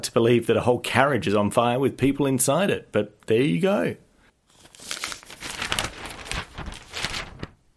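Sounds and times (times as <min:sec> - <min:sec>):
speech: 0:00.0 - 0:04.0, 0:04.8 - 0:05.1
newspaper page being turned: 0:04.5 - 0:07.6.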